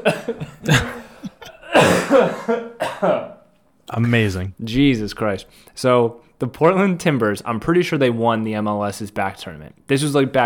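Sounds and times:
speech: 0.0 - 0.9, 4.0 - 10.4
person coughing with harsh throaty bursts: 0.0 - 3.4
person roughly clearing throat: 0.0 - 3.4.

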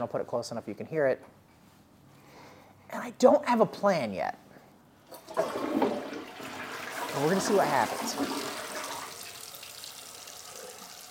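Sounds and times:
speech: 0.0 - 1.4, 2.9 - 4.4, 7.1 - 8.4
running tap water as someone washes their hands: 5.1 - 11.0.

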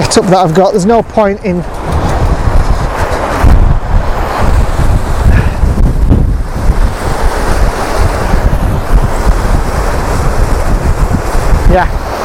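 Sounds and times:
strong coastal wind buffeting the microphone: 0.0 - 12.2
strong waves breaking at the coast: 0.0 - 12.2
speech: 0.1 - 1.8, 11.7 - 12.0.

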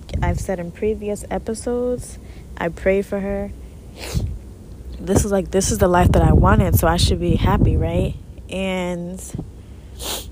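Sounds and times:
wind buffeting the microphone: 0.0 - 2.2, 4.1 - 4.4, 5.0 - 8.3, 9.2 - 9.6
speech: 0.2 - 4.3, 5.0 - 10.1.

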